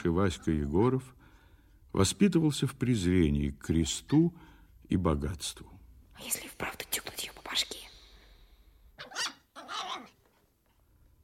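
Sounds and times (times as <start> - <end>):
speech: 0.0 - 1.2, 1.9 - 7.0
small toy dog barking: 9.0 - 10.2.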